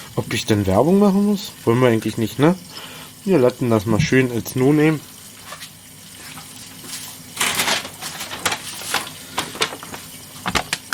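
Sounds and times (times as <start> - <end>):
speech: 0.2 - 5.1
crinkly plastic bag rustling: 5.0 - 10.9.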